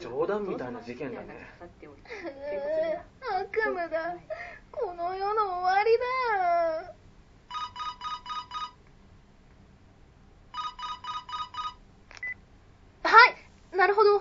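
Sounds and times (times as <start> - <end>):
speech: 0.2 - 7.0
electronic telephone ringing: 7.5 - 8.8, 10.5 - 12.4.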